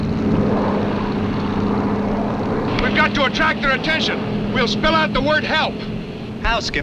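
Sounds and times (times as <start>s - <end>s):
propeller airplane engine droning overhead: 0.0s - 6.8s
speech: 3.1s - 6.8s.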